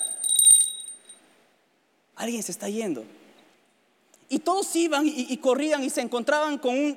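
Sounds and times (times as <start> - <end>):
small handheld bell ringing: 0.0 - 1.2
speech: 2.2 - 3.2, 4.3 - 6.9.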